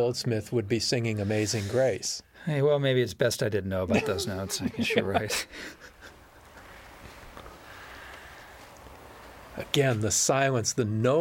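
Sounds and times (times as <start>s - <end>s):
speech: 0.0s - 5.9s, 9.6s - 11.2s
laughter: 3.9s - 6.4s
two people breathing heavily in a store: 5.3s - 9.5s.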